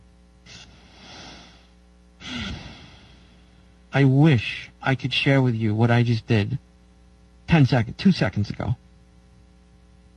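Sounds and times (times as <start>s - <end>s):
slow deep diaphragmatic breath in and out: 0.5s - 3.8s
speech: 3.9s - 6.7s, 7.5s - 8.8s.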